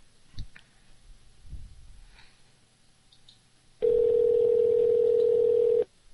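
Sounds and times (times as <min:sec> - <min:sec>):
loud electronic phone ringing tone: 0:03.8 - 0:05.9.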